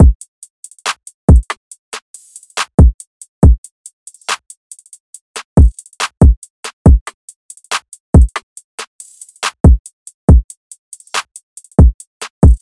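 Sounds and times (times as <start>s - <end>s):
bouncy trap drums at 140 BPM: 0.0s - 0.2s, 0.8s - 1.6s, 2.3s - 4.5s, 5.4s - 8.4s, 9.1s - 12.5s.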